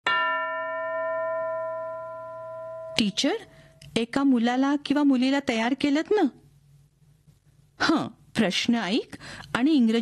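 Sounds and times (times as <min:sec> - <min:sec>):
single bell strike used as a cue in a classroom lesson game: 0:00.0 - 0:03.8
speech: 0:03.0 - 0:06.4, 0:07.8 - 0:09.9.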